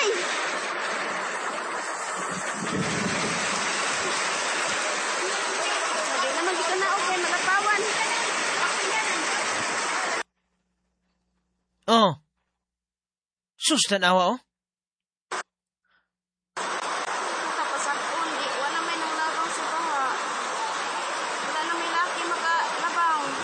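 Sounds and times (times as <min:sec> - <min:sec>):
rushing overflowing floodwater: 0:00.0 - 0:10.2, 0:16.6 - 0:23.4
speech: 0:11.9 - 0:12.2, 0:13.7 - 0:14.5.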